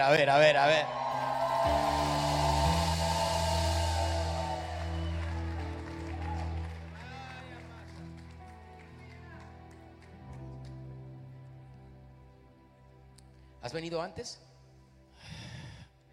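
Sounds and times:
speech: 0:00.0 - 0:01.0, 0:01.6 - 0:02.2, 0:13.6 - 0:14.5
steady music: 0:00.0 - 0:16.1
church audience shouting and cheering loudly: 0:00.3 - 0:07.6.

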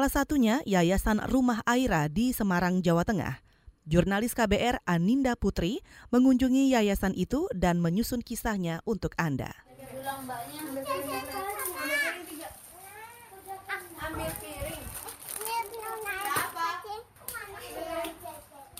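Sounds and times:
speech: 0:00.0 - 0:11.3
several young children babbling and laughing: 0:09.8 - 0:18.7.

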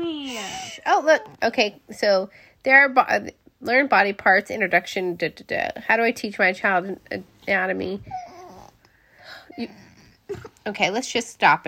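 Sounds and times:
young boy whining: 0:00.0 - 0:01.3, 0:08.0 - 0:08.8, 0:09.5 - 0:10.5
speech: 0:00.9 - 0:08.3, 0:09.6 - 0:11.6.

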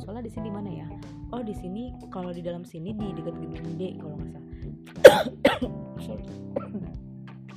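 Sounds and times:
speech: 0:00.2 - 0:07.1
person coughing: 0:05.0 - 0:05.7, 0:06.6 - 0:06.9
low throat sounds: 0:05.0 - 0:05.8, 0:06.6 - 0:07.0.

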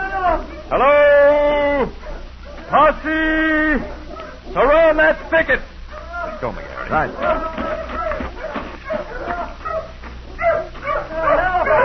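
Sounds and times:
hounds barking and yipping excitedly: 0:00.3 - 0:00.9, 0:01.9 - 0:02.8, 0:03.8 - 0:11.8
speech: 0:02.9 - 0:03.9, 0:04.6 - 0:05.7, 0:06.4 - 0:07.8
hounds whimpering: 0:03.8 - 0:11.8.

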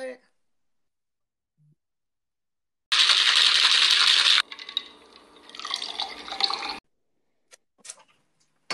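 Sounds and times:
drink pouring into a cup: 0:02.9 - 0:06.8.

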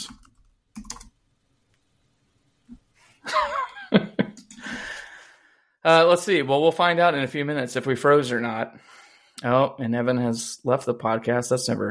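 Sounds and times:
typing a chat message on a computer keyboard: 0:00.0 - 0:01.2
speech: 0:05.8 - 0:11.8.

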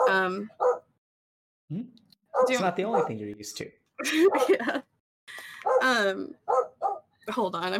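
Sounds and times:
dog barking: 0:00.0 - 0:00.9, 0:02.3 - 0:03.3, 0:05.6 - 0:07.1
speech: 0:00.1 - 0:00.6, 0:01.7 - 0:07.7
laughter: 0:04.0 - 0:04.9.

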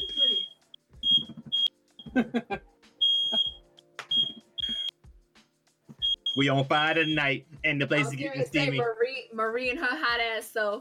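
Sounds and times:
smoke or fire alarm beeping: 0:00.0 - 0:01.7, 0:03.0 - 0:04.9, 0:06.0 - 0:07.2
speech: 0:02.2 - 0:02.7, 0:06.4 - 0:10.7.

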